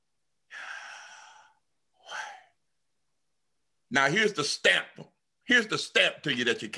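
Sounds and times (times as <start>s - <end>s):
long airy deep inhale: 0.5s - 2.6s
speech: 3.9s - 6.7s.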